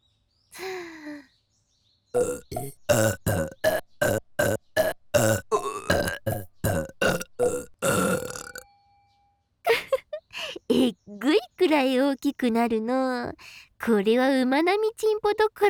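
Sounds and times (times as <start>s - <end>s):
speech: 2.2s - 3.6s, 11.8s - 15.6s
person burping rhythmically imitating a wooden fish drum: 2.2s - 8.6s.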